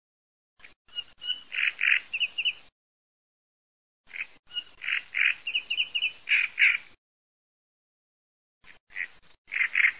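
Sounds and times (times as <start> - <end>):
great reed warbler harsh croaking song: 0.6 - 2.7, 4.0 - 7.0, 8.6 - 9.9.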